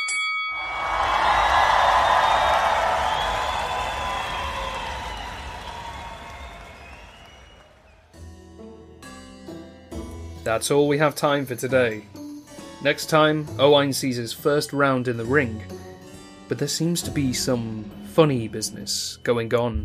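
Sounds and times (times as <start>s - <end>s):
bell ringing: 0.0s - 1.8s
large crowd roaring in arena stands: 0.6s - 8.1s
speech: 10.5s - 12.2s, 12.8s - 15.8s, 16.5s - 19.8s.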